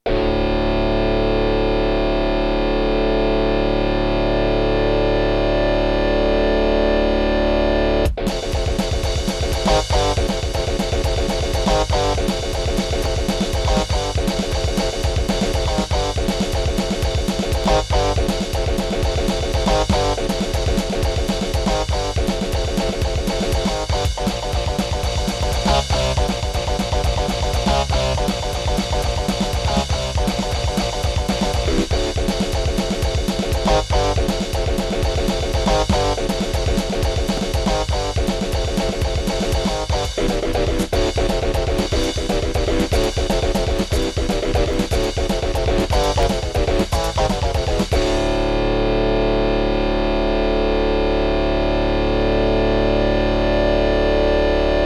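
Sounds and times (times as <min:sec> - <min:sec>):
Gravis Ultrasound PNP sound card test with classic patches: 0:00.0 - 0:54.8.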